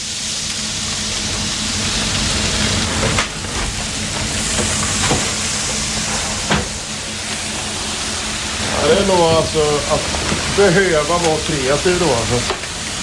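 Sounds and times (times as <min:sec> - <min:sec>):
chicken mince sizzling in a hot frying pan: 0:00.0 - 0:13.0
speech: 0:09.0 - 0:12.6.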